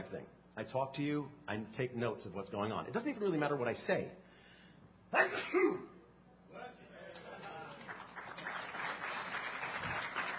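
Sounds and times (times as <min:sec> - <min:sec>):
speech: 0:00.1 - 0:04.3, 0:05.1 - 0:05.9
short sharp sneeze-like burst: 0:05.1 - 0:06.0
audience applauding: 0:07.1 - 0:10.3.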